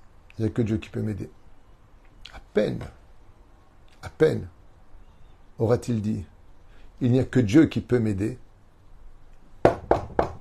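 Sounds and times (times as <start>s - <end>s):
speech: 0.4s - 1.4s, 2.6s - 3.0s, 4.0s - 4.6s, 5.6s - 6.3s, 7.0s - 8.4s
firm knocking on a door: 9.6s - 10.3s.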